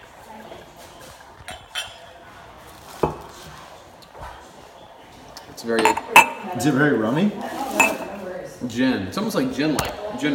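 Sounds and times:
speech: 5.6s - 7.9s, 8.6s - 10.3s
drinking glass of rum clinking against a hard surface: 5.8s - 6.4s.

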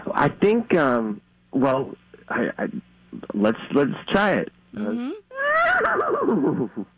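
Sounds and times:
speech: 0.2s - 6.9s
person imitating a horse neigh: 4.8s - 6.9s.

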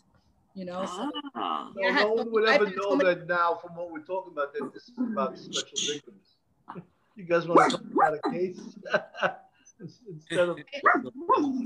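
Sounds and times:
speech: 0.6s - 11.6s
pug barking: 7.5s - 8.3s, 10.8s - 11.4s
laughter: 8.4s - 10.4s.

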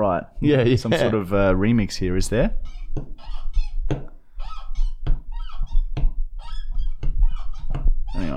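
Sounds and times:
speech: 0.2s - 4.1s
sharp thumps: 2.3s - 8.3s
squeaky door hinge creaking: 2.5s - 8.3s.

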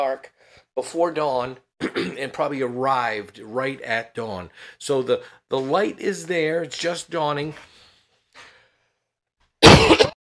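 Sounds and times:
speech: 0.0s - 7.8s
loud harsh cough: 1.8s - 2.2s, 9.6s - 10.2s.

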